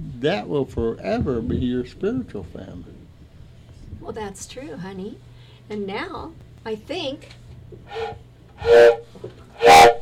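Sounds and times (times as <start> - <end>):
speech: 0.2 - 3.0, 4.0 - 9.9
train whistle: 7.9 - 10.0.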